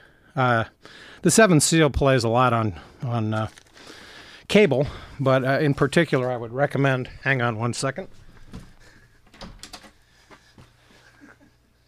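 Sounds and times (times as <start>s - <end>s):
speech: 0.4s - 8.7s
locked door handle and latch clicks and rattles: 8.5s - 10.0s.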